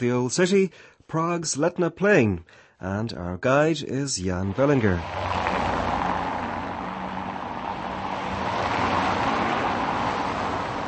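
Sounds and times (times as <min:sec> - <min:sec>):
speech: 0:00.0 - 0:05.6
city traffic rush on an avenue: 0:04.2 - 0:10.8.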